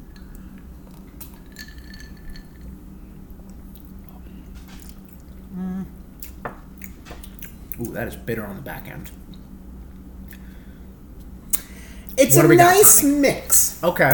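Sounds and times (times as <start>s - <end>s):
hum: 0.0s - 14.1s
glasses of passion fruit drink clinking in a toast: 1.3s - 2.6s
speech: 7.8s - 9.2s, 12.2s - 14.1s.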